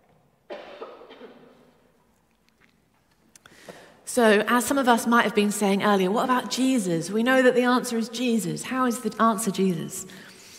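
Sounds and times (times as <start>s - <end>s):
person coughing: 0.5s - 1.8s
speech: 4.1s - 10.3s.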